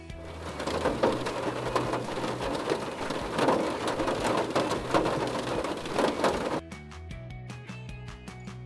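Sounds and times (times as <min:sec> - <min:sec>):
dense rain drumming on a hard surface: 0:00.0 - 0:06.6.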